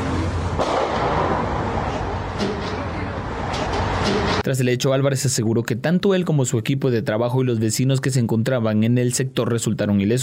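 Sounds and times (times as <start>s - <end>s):
steady street noise: 0.0s - 8.0s
sharp gunshots: 0.6s - 2.9s
speech: 4.5s - 10.2s.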